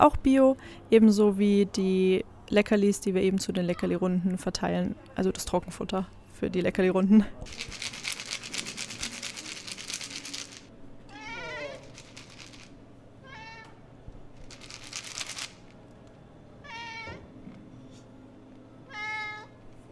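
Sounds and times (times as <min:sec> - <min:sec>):
speech: 0:00.0 - 0:07.9
low hum: 0:00.0 - 0:19.9
cat meowing: 0:11.1 - 0:12.0, 0:16.6 - 0:17.2, 0:18.9 - 0:19.5.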